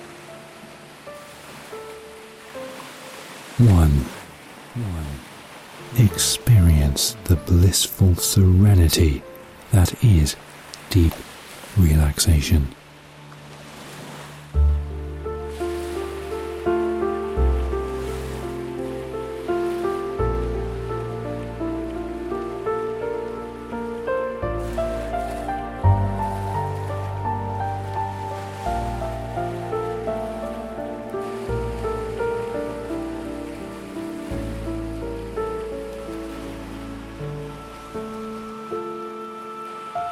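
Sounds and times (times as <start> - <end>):
gentle ocean waves washing onto the shore: 0.0 - 40.1
speech: 3.6 - 4.2, 4.8 - 12.8
soft ambient music with slow deep bass notes: 13.0 - 40.1.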